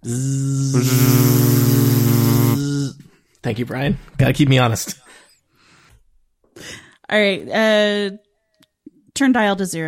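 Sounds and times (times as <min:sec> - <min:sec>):
speech: 0:00.0 - 0:02.7, 0:03.4 - 0:05.0, 0:06.6 - 0:08.2, 0:09.2 - 0:09.8
voice imitating a machine humming on low setting: 0:00.0 - 0:03.0.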